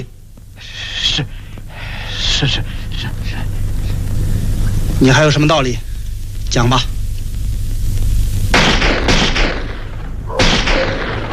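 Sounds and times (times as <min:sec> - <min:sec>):
low rumbling hum: 0:00.0 - 0:11.3
speech: 0:01.2 - 0:01.4, 0:02.4 - 0:03.3, 0:05.0 - 0:05.9, 0:06.5 - 0:07.0
gunfire bursts with rough echo: 0:08.5 - 0:11.3.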